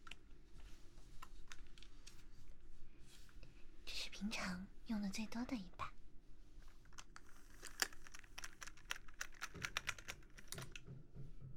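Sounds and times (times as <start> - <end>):
faint low hum: 0.0 - 11.5
speech: 4.2 - 6.0
typing on a computer keyboard: 6.9 - 10.9.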